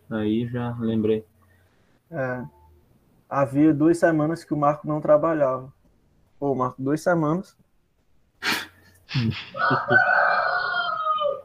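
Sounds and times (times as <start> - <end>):
speech: 0.1 - 1.3, 2.1 - 2.6, 3.3 - 5.8, 6.4 - 7.6, 8.4 - 10.2
laughter: 9.1 - 10.3
rooster crowing: 9.5 - 11.4.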